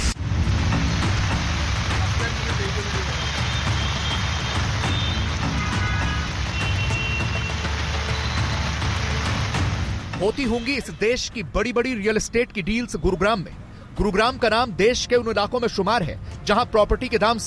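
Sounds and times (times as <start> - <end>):
heavy rain pouring onto a waterlogged street in the Subhash Chowk area of Gurugram: 0.2 - 10.1
vehicle engines idling: 0.2 - 10.1
speech: 10.3 - 17.4.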